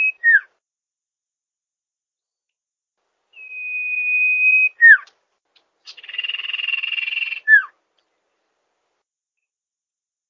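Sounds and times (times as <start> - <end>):
songbird training song with pure whistle and buzzy trill: 0.0 - 0.5, 3.3 - 5.2, 5.8 - 7.8.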